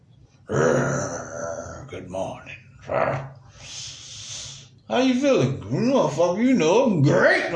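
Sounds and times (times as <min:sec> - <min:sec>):
speech: 0:00.5 - 0:01.2, 0:01.9 - 0:03.8, 0:04.9 - 0:07.5
person imitating a big cat's roar with a morning yawn: 0:00.5 - 0:01.9.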